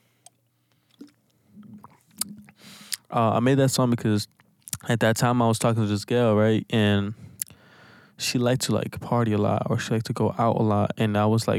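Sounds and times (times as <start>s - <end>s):
faint low hum: 0.0s - 11.5s
wet slurps, lip smacks and clicks: 0.2s - 3.1s, 4.3s - 4.8s, 7.4s - 7.6s
person sipping water: 0.8s - 3.1s
speech: 3.1s - 7.3s, 8.2s - 11.5s.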